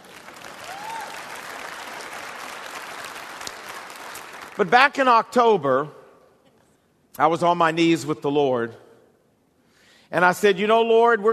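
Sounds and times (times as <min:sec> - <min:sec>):
audience applauding: 0:00.0 - 0:04.7
speech: 0:04.6 - 0:06.0, 0:07.2 - 0:08.8, 0:10.1 - 0:11.3.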